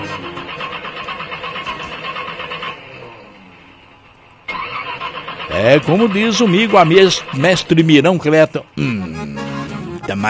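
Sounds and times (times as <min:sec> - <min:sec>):
car engine cranking and failing to start: 0:00.0 - 0:07.9
speech: 0:05.6 - 0:09.2, 0:10.1 - 0:10.2.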